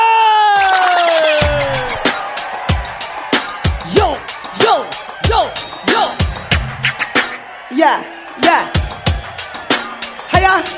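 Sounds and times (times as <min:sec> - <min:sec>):
crowd screaming and cheering at an eighth-anniversary celebration: 0:00.0 - 0:10.7.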